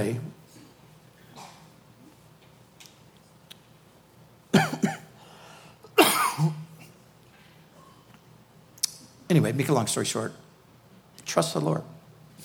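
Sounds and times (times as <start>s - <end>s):
speech: 0.0s - 0.4s, 4.5s - 4.9s, 9.3s - 10.5s, 11.3s - 12.0s
dry coughing with harsh hacks: 4.5s - 5.2s, 5.9s - 7.0s.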